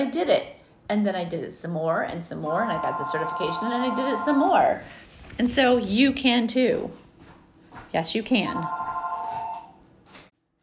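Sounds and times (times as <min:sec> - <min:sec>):
speech: 0:00.0 - 0:07.0, 0:07.9 - 0:08.9
telephone ringing with electronic tone: 0:02.5 - 0:04.8, 0:08.5 - 0:09.8.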